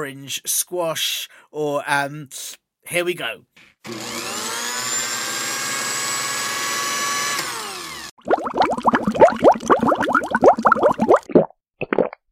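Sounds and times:
speech: 0.0 - 4.4
home drink-carbonating machine humming: 3.9 - 8.1
drink bubbling and fizzing as it is carbonated: 8.2 - 12.2.

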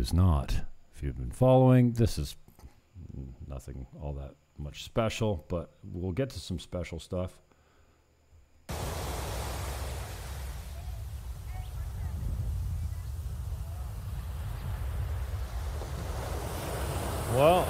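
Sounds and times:
speech: 0.0 - 2.4, 3.2 - 7.4
surf on a beach: 8.7 - 17.6
wind rumble: 8.7 - 17.6
faint voices: 10.7 - 15.2.

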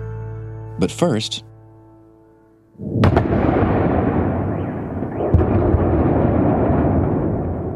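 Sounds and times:
speech: 0.8 - 1.5
loud blast: 2.8 - 7.7
sharp crack: 2.8 - 7.7.

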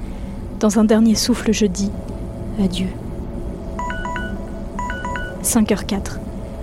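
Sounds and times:
steady dense low rumble: 0.0 - 6.6
speech: 0.6 - 3.0, 5.4 - 6.2
terminal electronic notification beeps stepping in pitch: 3.8 - 5.6.

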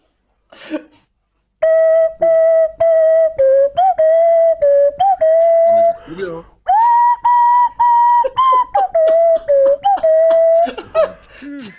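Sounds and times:
march melody played by ear on a whistle-like tone: 1.6 - 6.0, 6.7 - 10.8
laughter: 8.2 - 11.7.

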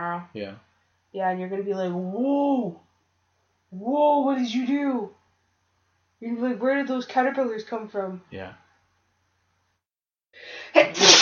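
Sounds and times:
speech: 0.2 - 2.9, 3.7 - 5.2, 6.2 - 8.6
person sneezing: 10.8 - 11.2.

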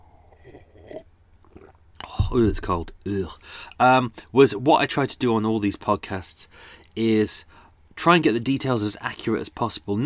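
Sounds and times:
person slurping tea: 0.2 - 1.8
speech: 2.3 - 10.0.

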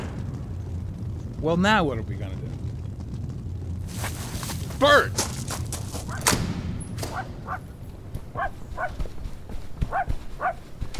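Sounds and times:
steady rumbling noise: 0.0 - 10.9
speech: 1.4 - 2.6, 4.8 - 5.4
dog barking in short yaps: 7.1 - 7.6, 8.3 - 9.0, 9.8 - 10.6.

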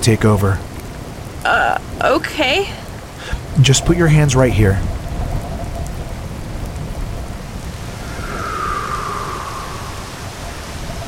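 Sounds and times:
speech: 0.0 - 0.7, 1.4 - 5.0
heavy rain pouring: 0.0 - 11.0
deep rumbling roar of wind: 4.8 - 11.0
whistling gust of wind: 7.5 - 11.0.

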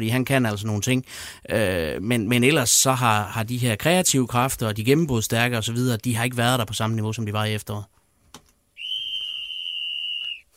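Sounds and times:
speech: 0.0 - 8.0
sharp piercing whistle blast: 8.8 - 10.5.

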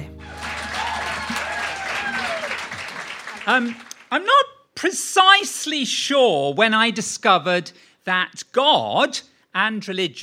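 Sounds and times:
live audience clapping loudly: 0.0 - 4.1
crowd whooping and whistling: 0.2 - 3.6
speech: 3.5 - 10.2.

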